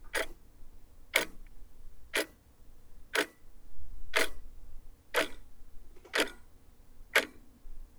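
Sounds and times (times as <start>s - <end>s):
clock ticking: 0.1s - 0.4s, 1.2s - 1.4s, 4.2s - 4.4s, 5.2s - 5.4s, 6.1s - 6.4s, 7.2s - 7.4s.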